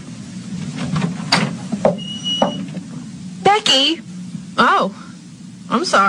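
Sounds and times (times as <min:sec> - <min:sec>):
low steady hum: 0:00.0 - 0:06.0
door down a hall opening: 0:00.8 - 0:02.9
speech: 0:03.6 - 0:05.0, 0:05.7 - 0:06.0.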